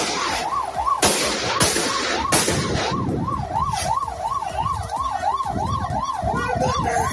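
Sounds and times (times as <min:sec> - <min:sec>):
sharp gunshots fired by municipal police at car tyres: 0:00.0 - 0:00.4, 0:01.0 - 0:03.0
rumbling street traffic: 0:00.0 - 0:07.1
wailing siren: 0:00.0 - 0:07.1.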